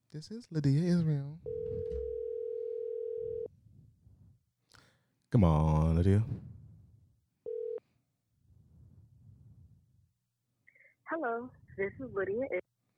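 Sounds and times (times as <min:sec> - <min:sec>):
speech: 0:00.1 - 0:02.2, 0:05.3 - 0:06.4, 0:11.2 - 0:12.7
electronic ringing tone of an outgoing phone call: 0:01.4 - 0:03.5, 0:07.5 - 0:07.8.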